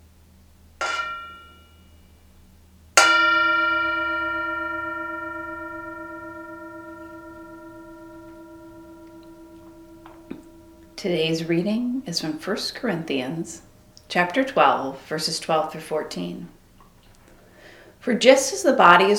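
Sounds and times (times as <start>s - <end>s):
Tibetan singing bowl struck and ringing: 0.8s - 1.8s, 3.0s - 12.5s
speech: 11.0s - 16.6s, 18.0s - 19.1s.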